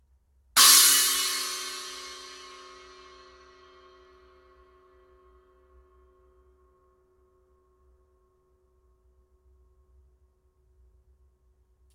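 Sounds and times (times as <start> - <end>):
15in China Trash cymbal: 0.6 - 3.8.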